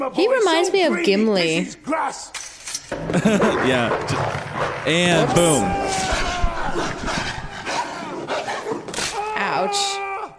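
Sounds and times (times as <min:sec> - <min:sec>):
speech: 0:00.0 - 0:06.2
laughter: 0:02.9 - 0:04.3, 0:04.9 - 0:07.7
wolf snarling and growling in an attack: 0:03.3 - 0:09.1
people shouting: 0:04.9 - 0:07.5, 0:08.8 - 0:10.3
humans crying out in pain: 0:05.1 - 0:07.6, 0:09.0 - 0:10.3.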